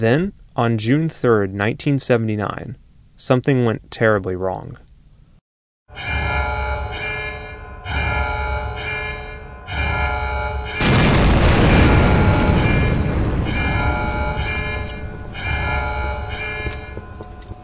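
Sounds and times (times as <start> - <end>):
speech: 0.0 - 4.8, 5.9 - 6.1
ringing bell-like alarm tones: 5.9 - 17.6
rumbling explosion at an offshore oil drilling platform in the Gulf of Mexico: 10.8 - 17.6.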